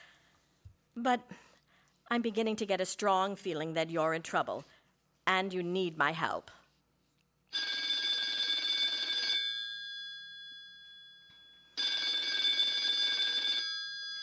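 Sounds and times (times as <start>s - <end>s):
speech: 1.0s - 1.5s, 2.1s - 6.6s
telephone ringing with bright trilling tone: 7.5s - 14.2s.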